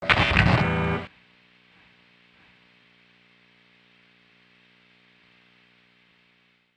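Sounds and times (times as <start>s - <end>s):
guitar through a pickup: 0.0s - 2.6s.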